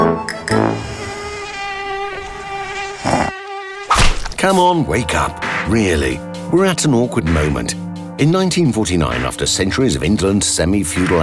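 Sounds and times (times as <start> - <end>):
mosquito buzzing in a high nasal whine: 0.0 - 4.4
speech: 4.4 - 11.2.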